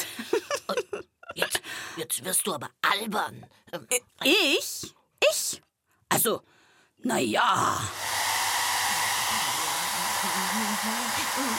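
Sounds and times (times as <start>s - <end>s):
laughter: 0.0s - 1.5s
speech: 2.0s - 5.6s, 6.2s - 8.0s, 10.3s - 11.5s
hair dryer blowing: 7.9s - 11.5s.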